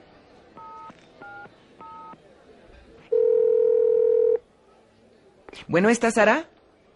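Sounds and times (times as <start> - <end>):
telephone dial tone: 3.1 - 4.4
speech: 5.7 - 6.5.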